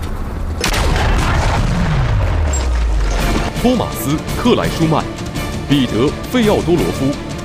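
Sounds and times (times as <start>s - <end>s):
low rumble: 0.0s - 4.4s
cannon firing at a target: 0.6s - 3.5s
speech: 3.6s - 7.3s.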